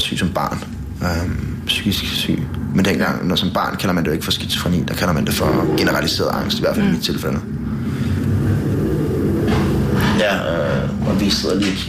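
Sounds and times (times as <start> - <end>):
speech: 0.1 - 7.6, 10.2 - 11.8
motorcycle driving past outside: 5.2 - 10.5.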